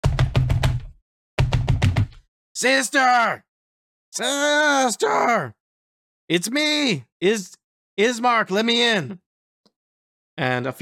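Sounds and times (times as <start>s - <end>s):
heavy pounding on a wooden door: 0.0s - 2.2s
speech: 2.6s - 3.5s, 4.1s - 5.6s, 6.3s - 9.2s, 10.4s - 10.7s
short strained vocal cry: 4.2s - 5.6s.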